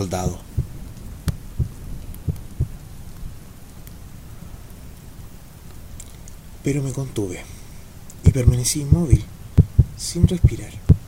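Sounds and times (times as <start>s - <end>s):
speech: 0.0s - 0.5s, 6.6s - 7.6s, 8.3s - 9.3s, 10.0s - 10.8s
dark rumbling background: 0.0s - 11.0s
heartbeat thumping in lub-dub rhythm: 0.2s - 2.8s, 8.3s - 11.0s.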